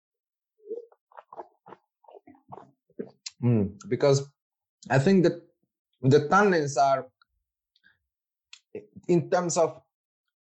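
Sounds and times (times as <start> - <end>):
sipping and slurping red wine during a wine tasting: 0.6 - 3.5
speech: 3.4 - 7.1, 8.7 - 9.8.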